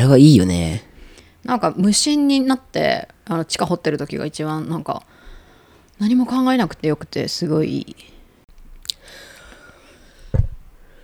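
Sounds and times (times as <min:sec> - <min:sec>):
speech: 0:00.0 - 0:05.1, 0:06.0 - 0:08.1
quiet drawn-out deep breath: 0:05.1 - 0:05.9, 0:09.0 - 0:11.0
short low thump: 0:10.3 - 0:10.7.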